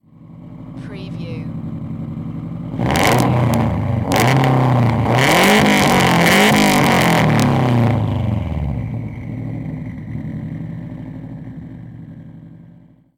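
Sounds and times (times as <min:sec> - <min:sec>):
Subaru STI exhaust revving: 0:01.5 - 0:13.0.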